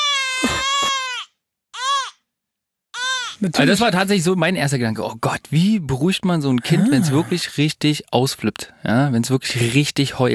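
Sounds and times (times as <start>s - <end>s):
baby crying: 0.0s - 2.2s, 2.9s - 3.4s
speech: 3.4s - 10.3s.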